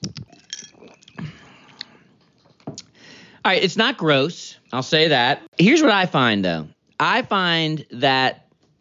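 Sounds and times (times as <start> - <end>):
lip smacks: 0.0 - 3.0
person sipping fizzy ginger ale from a glass: 0.0 - 3.0
speech: 3.4 - 8.4.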